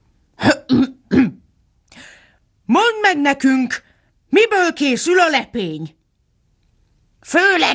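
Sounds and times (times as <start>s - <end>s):
king clearing his throat: 0.4s - 1.4s
speech: 0.7s - 0.9s, 3.2s - 6.0s, 7.2s - 7.7s.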